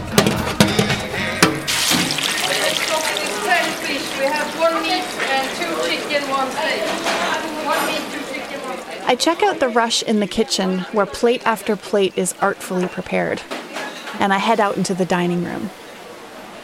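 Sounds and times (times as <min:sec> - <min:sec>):
Arctic ocean water sloshing and splashing in the Canadian Arctic in summer: 0:00.2 - 0:09.0
sharp cracks of breaking ice: 0:01.7 - 0:05.4
speech: 0:05.0 - 0:08.2, 0:09.1 - 0:15.8.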